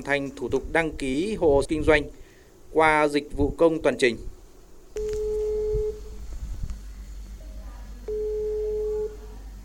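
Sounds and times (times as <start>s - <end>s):
speech: 0.0s - 4.3s
low phone line noise: 0.0s - 9.6s
phone line ringback tones of a call connecting: 5.0s - 6.1s, 8.1s - 9.2s.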